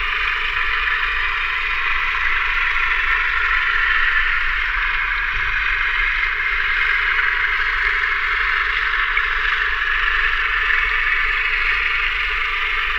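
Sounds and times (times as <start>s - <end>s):
boat: 0.0s - 12.9s.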